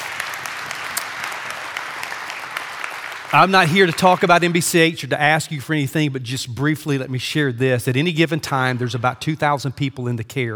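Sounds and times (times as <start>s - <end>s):
crowd clapping: 0.0s - 4.6s
speech: 3.3s - 10.5s.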